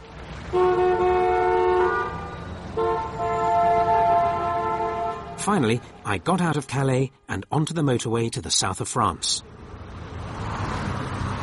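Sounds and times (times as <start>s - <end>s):
steady rumble of road traffic: 0.0s - 11.4s
speech: 0.5s - 0.8s, 5.4s - 9.5s
long loud car horn blasts: 0.5s - 5.4s.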